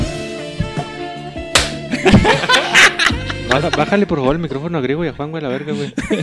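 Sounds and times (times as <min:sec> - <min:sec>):
palms slapping in a high five: 0:01.5 - 0:01.9
several people laughing and chuckling: 0:01.9 - 0:04.1, 0:05.6 - 0:06.2
speech: 0:03.6 - 0:06.2.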